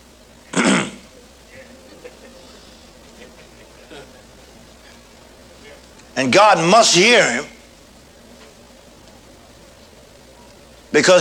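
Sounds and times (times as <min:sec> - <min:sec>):
faint low murmuring: 0:00.0 - 0:06.4, 0:07.1 - 0:11.1
person clearing throat: 0:00.5 - 0:01.1
laughter: 0:01.1 - 0:06.0
speech: 0:06.2 - 0:07.5, 0:11.0 - 0:11.1.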